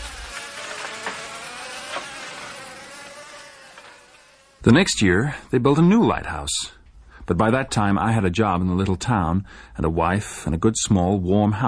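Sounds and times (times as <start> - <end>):
flies buzzing by a calm ocean: 0.0 - 4.6
speech: 4.6 - 11.6.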